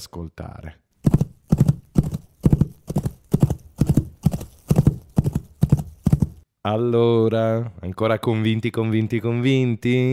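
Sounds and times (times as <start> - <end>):
speech: 0.0 - 1.2, 6.6 - 10.1
foley horse hooves clip-clop made by a foley artist in a recording studio: 1.0 - 6.4.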